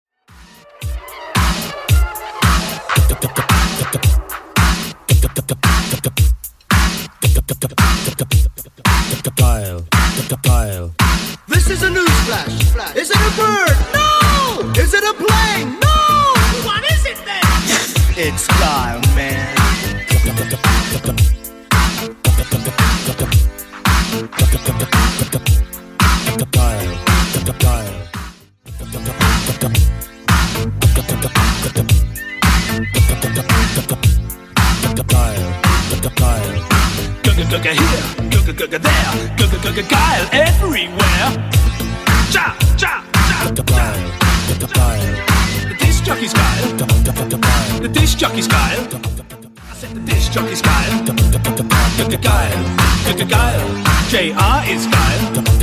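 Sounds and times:
80s drum machine beat at 112 bpm: 0.3s - 55.6s.

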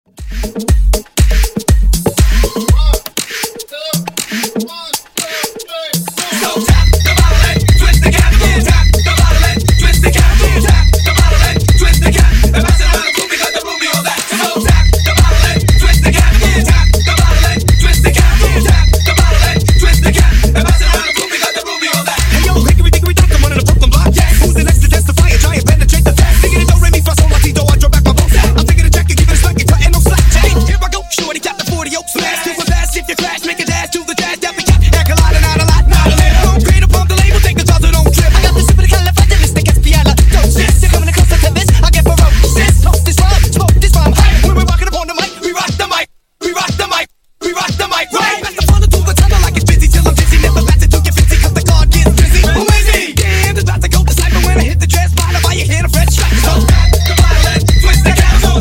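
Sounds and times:
funk nu disco house music at 120 bpm: 0.1s - 58.5s.

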